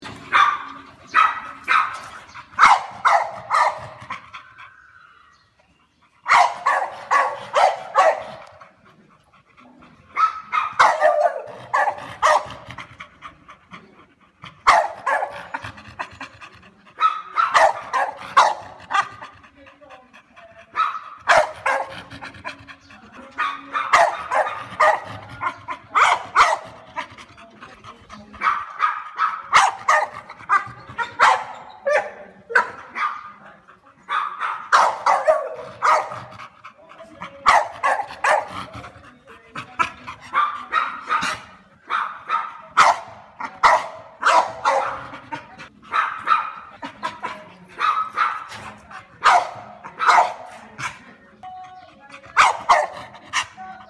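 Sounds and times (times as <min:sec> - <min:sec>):
bull dog barking: 0:00.3 - 0:04.2, 0:06.3 - 0:08.5, 0:10.2 - 0:12.7, 0:14.6 - 0:15.6, 0:17.0 - 0:19.2, 0:20.8 - 0:22.0, 0:23.4 - 0:26.8, 0:28.4 - 0:33.3, 0:34.1 - 0:36.3, 0:37.5 - 0:38.6, 0:40.3 - 0:45.3, 0:45.9 - 0:46.8, 0:47.8 - 0:50.5, 0:52.4 - 0:53.5.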